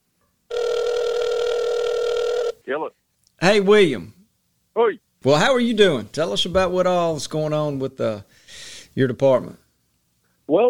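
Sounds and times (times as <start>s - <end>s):
loud steady electronic telephone ring tone as a call is placed: 0.5s - 2.6s
speech: 2.7s - 4.2s, 4.8s - 9.6s, 10.5s - 10.6s.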